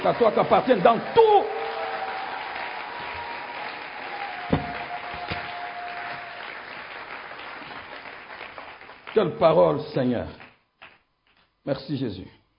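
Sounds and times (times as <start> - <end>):
speech: 0.0 - 1.5, 9.2 - 10.4, 11.6 - 12.4
church congregation applauding during a French-language service: 0.0 - 9.7.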